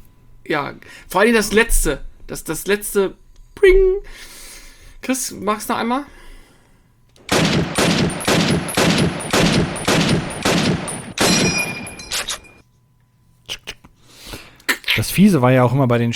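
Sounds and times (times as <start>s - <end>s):
speech: 0.4s - 4.3s, 5.0s - 6.2s, 15.1s - 16.1s
fainter sharp clicks: 7.2s - 12.6s
video game weapon gunfire: 7.3s - 12.6s.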